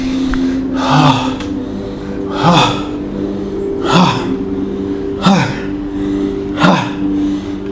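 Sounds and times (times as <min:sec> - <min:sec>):
bhastrika breathing with deep inhales and sharp exhales: 0:00.0 - 0:07.7
low hum: 0:00.0 - 0:07.7.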